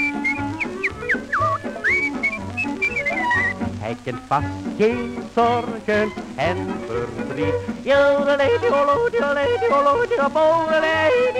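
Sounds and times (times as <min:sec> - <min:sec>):
person whistling a bright cheerful tune: 0:00.0 - 0:03.6
steady musical accompaniment: 0:00.0 - 0:11.3
speech: 0:04.0 - 0:11.3.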